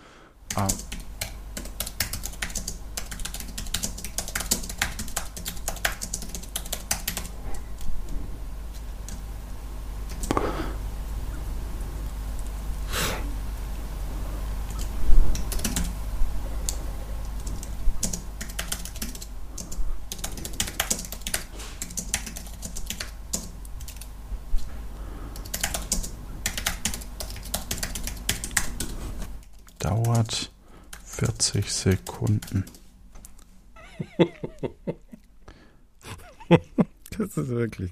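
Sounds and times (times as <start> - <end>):
steady low hum: 0.0 - 37.9
computer keyboard key clicks while typing a message: 0.5 - 7.9, 14.7 - 16.0, 16.6 - 24.1, 25.4 - 30.2
speech: 0.6 - 0.9, 30.2 - 30.5, 31.4 - 32.8, 37.3 - 37.9
laughter: 33.8 - 35.3, 36.0 - 37.0.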